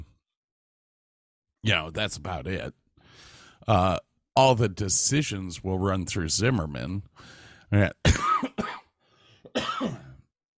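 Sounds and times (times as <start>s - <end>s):
speech: 1.6s - 8.6s
harsh coughing: 8.0s - 10.3s
throat clearing: 9.5s - 10.3s.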